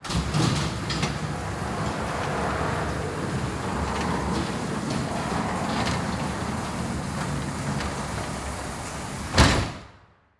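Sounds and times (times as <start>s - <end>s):
fire station emergency garage door closing: 0.0s - 10.0s.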